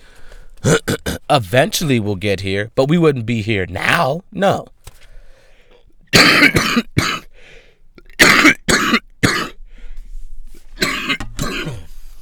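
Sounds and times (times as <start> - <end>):
harsh rasping coughing fit: 0.6 - 1.3, 6.1 - 7.3, 8.1 - 9.6, 10.8 - 12.0
speech: 0.6 - 4.8, 6.2 - 6.9.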